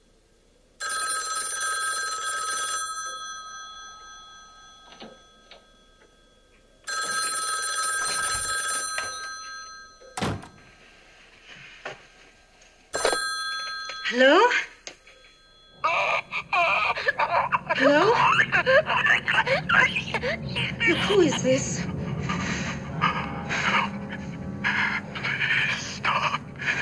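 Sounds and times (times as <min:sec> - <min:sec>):
telephone ringing in long trilling bursts: 0:00.8 - 0:10.8, 0:12.9 - 0:19.9
speech: 0:14.1 - 0:14.7, 0:17.8 - 0:22.0
laughter: 0:15.8 - 0:26.8.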